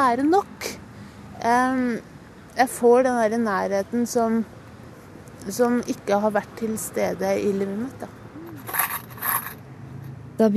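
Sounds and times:
speech: 0.0 - 0.7, 1.4 - 4.6, 5.4 - 8.2
coins tossed into a paper cup: 8.6 - 9.6.

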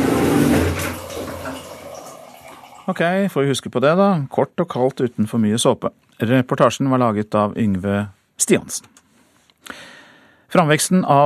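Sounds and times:
shower water running: 0.0 - 3.2
water trickling after the shower is shut off: 0.6 - 3.2
speech: 2.9 - 8.9, 10.5 - 11.2.

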